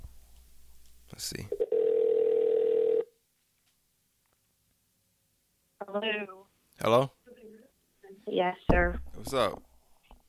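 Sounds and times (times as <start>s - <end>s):
speech: 1.2s - 1.6s, 6.0s - 7.2s, 8.2s - 9.7s
telephone ringback tone on an outgoing call: 1.6s - 3.1s.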